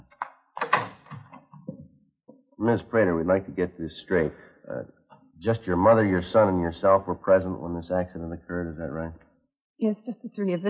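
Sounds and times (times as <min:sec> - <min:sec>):
wooden front door being unlatched and opened: 0:00.6 - 0:01.8
speech: 0:02.6 - 0:09.2, 0:09.8 - 0:10.6.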